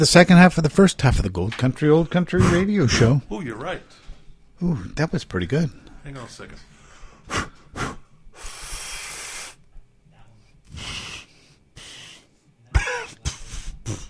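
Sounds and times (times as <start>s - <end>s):
speech: 0.0s - 6.7s, 7.3s - 8.0s
person clearing throat: 12.7s - 14.0s
person coughing: 12.7s - 14.0s.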